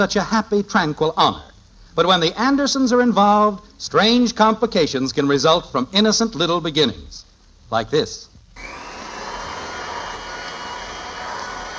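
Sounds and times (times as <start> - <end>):
speech: 0.0 - 8.8
vacuum cleaner running: 8.6 - 11.7.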